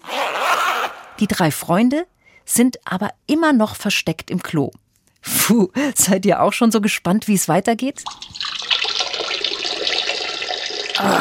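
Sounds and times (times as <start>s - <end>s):
speech: 1.2s - 8.4s, 11.0s - 11.1s
water trickling and splashing like a small fountain into a basin: 8.0s - 11.0s.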